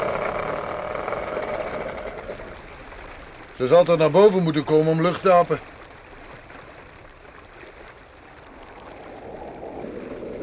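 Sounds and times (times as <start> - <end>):
motorboat engine idling on a river: 0.0 - 7.5
speech: 3.6 - 5.7.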